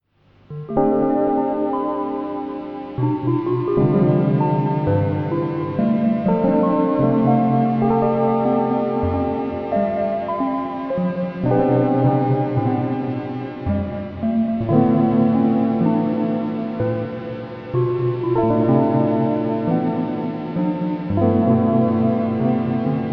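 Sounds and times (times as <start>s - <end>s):
electric piano synth jazz: 0.5s - 23.1s.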